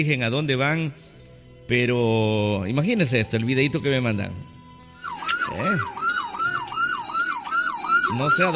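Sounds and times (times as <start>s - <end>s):
speech: 0.0s - 1.1s, 1.7s - 4.6s, 5.5s - 6.0s, 8.1s - 8.5s
emergency siren wailing: 4.9s - 8.5s.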